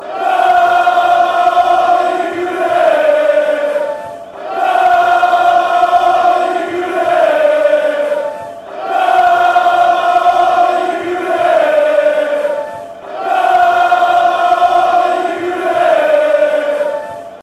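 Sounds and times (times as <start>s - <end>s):
football fans chanting: 0.0s - 17.4s.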